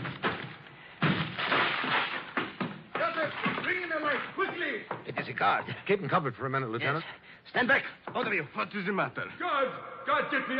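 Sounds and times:
door being battered down with heavy splintering crashes: 0.0s - 4.0s
speech: 4.6s - 10.5s.

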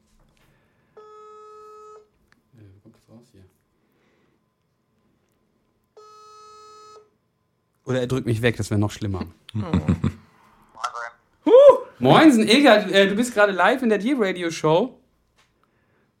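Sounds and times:
phone ringback tone over a speakerphone: 1.0s - 2.1s, 6.0s - 7.1s
speech: 3.0s - 3.6s, 7.9s - 10.2s, 12.0s - 15.0s
laughter: 9.2s - 10.3s.

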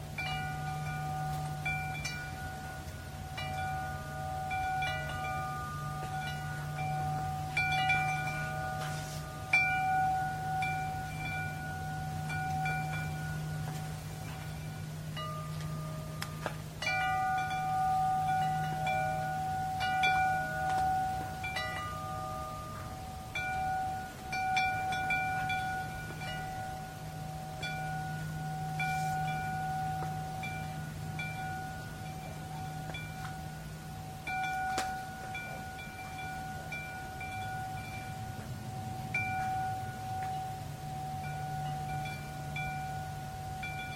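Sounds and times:
low rumbling hum: 0.0s - 43.9s
metal chimes ringing: 0.0s - 43.9s.

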